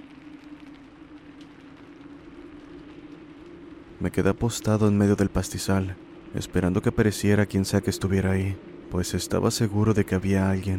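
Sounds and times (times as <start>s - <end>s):
low droning hum: 0.0s - 10.7s
wind and rain beating against a helmet in a pasture: 0.0s - 10.7s
speech: 4.0s - 10.7s.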